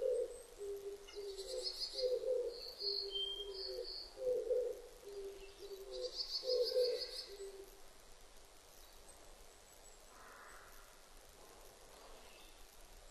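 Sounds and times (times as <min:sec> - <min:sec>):
Oriental turtle dove cooing: 0:00.0 - 0:07.7.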